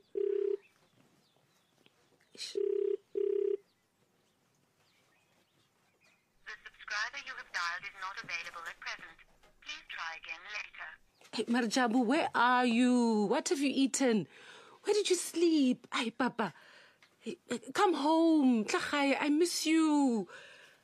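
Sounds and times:
outgoing phone call ringback tone: 0.0 - 0.7, 2.6 - 3.6
person talking loudly over the phone line: 6.5 - 11.0
speech: 11.4 - 16.6, 17.2 - 20.5.

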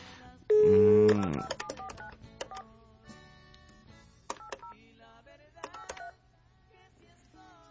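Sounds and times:
loud electronic phone tone: 0.5 - 1.5
phone keypad touch-tone beeps: 0.5 - 2.6, 4.3 - 4.7, 5.6 - 6.1.

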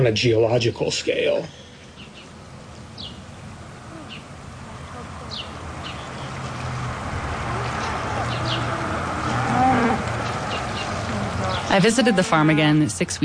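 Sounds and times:
speech: 0.0 - 1.6, 11.8 - 13.2
cattle mooing: 7.4 - 12.4.

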